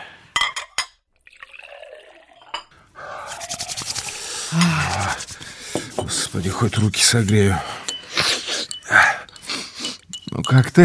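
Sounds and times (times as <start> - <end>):
hot water from a just-boiled kettle pouring into a cup: 1.2 - 5.5
crockery clinking: 5.7 - 10.8
speech: 6.3 - 7.8, 10.5 - 10.8.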